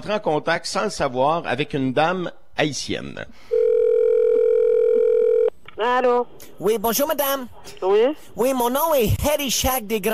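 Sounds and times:
speech: 0.0 - 3.5, 5.8 - 10.1
telephone dial tone while a random number is being called: 3.5 - 5.5.

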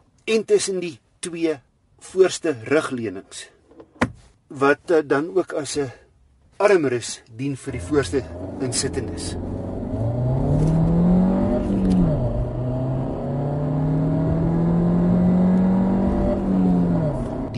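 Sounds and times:
speech: 0.3 - 3.6, 4.5 - 6.0, 6.6 - 9.6
92 kW 1.4 turbo petrol Volkswagen Golf SV engine revving: 7.7 - 17.5.

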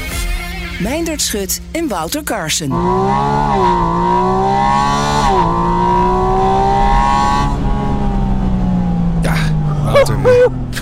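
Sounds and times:
speech: 0.8 - 5.8
Porsche 718 Spyder RS sports car engine revving: 2.7 - 10.8.

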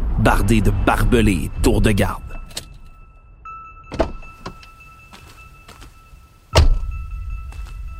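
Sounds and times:
speech: 0.2 - 2.3
steady two-tone chime: 2.0 - 7.9
car door opening: 3.9 - 4.7
solid car door thunk: 3.9 - 4.7, 6.6 - 6.9.

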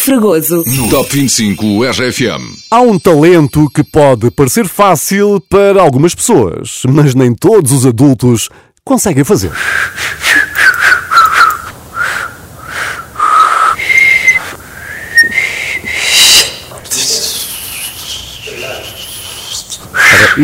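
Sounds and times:
speech: 0.0 - 10.4
people trying and failing to whistle with breathy puffs: 9.6 - 20.4.

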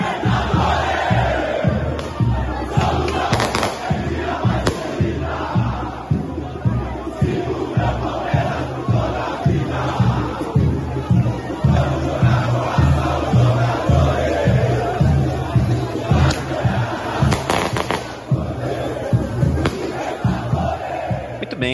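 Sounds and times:
large crowd of football fans chanting at team send-off in São Paulo: 0.0 - 21.7
pounding rhythmic beat: 0.0 - 21.7
sharp firework bangs: 3.3 - 4.0, 4.6 - 4.9, 17.3 - 18.2, 19.6 - 20.0.

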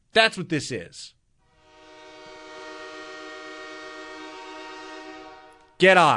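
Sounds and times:
speech: 0.2 - 1.2, 5.8 - 6.1
train horn blaring: 1.4 - 5.8.

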